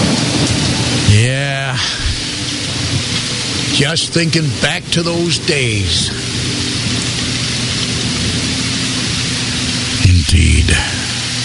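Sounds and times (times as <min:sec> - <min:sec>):
steady heavy rain pouring: 0:00.0 - 0:11.4
speech: 0:03.8 - 0:06.6.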